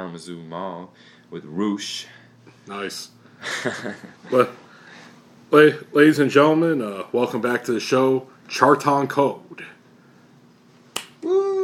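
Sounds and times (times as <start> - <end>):
speech: 0.0 - 4.6, 5.5 - 9.8
person clapping hands for themself: 10.9 - 11.2
person whooping in cheering: 11.2 - 11.6.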